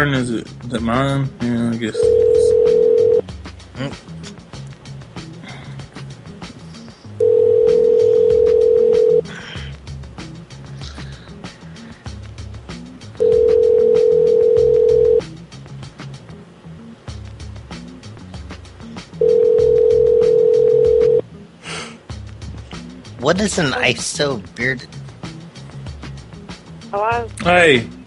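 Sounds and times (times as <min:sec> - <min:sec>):
speech: 0:00.0 - 0:02.8, 0:03.8 - 0:04.1, 0:23.3 - 0:25.0, 0:26.9 - 0:28.0
phone line ringing tone on a call: 0:02.0 - 0:03.2, 0:07.2 - 0:09.2, 0:13.2 - 0:15.2, 0:19.2 - 0:21.2.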